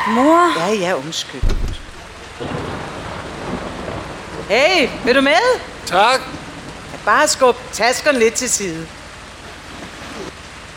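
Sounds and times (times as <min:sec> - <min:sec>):
speech: 0:00.0 - 0:01.8, 0:04.5 - 0:06.4, 0:07.1 - 0:09.0
steady rain: 0:00.0 - 0:10.7
low rumble of thunder: 0:01.4 - 0:07.8.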